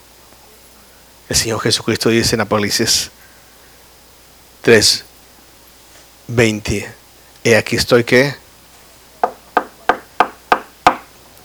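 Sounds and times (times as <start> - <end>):
speech: 1.3 - 3.2, 4.6 - 5.1, 6.3 - 8.4
firm knocks on a wooden door: 9.2 - 11.1.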